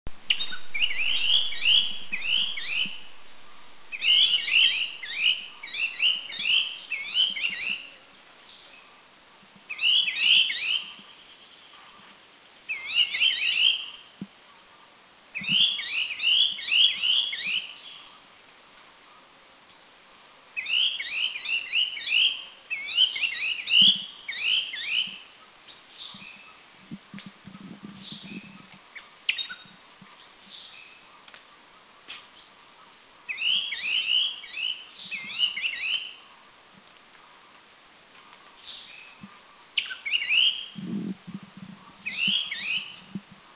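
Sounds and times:
Striated Bulbul calling in Doi Lang Thailand: 0.2s - 8.8s, 9.7s - 12.0s, 12.7s - 14.1s, 15.4s - 18.1s, 20.6s - 26.6s, 28.0s - 31.1s, 33.3s - 36.2s, 37.9s - 41.0s, 41.6s - 43.2s.

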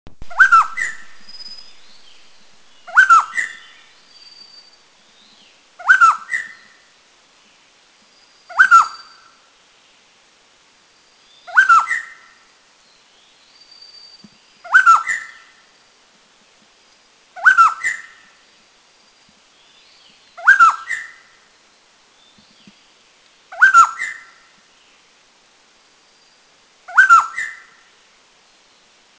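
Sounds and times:
spot-breasted scimitar babbler in Taiwan: 0.2s - 6.8s, 8.5s - 9.2s, 11.5s - 12.2s, 14.7s - 15.4s, 20.4s - 21.2s, 23.5s - 24.4s, 26.9s - 27.7s.

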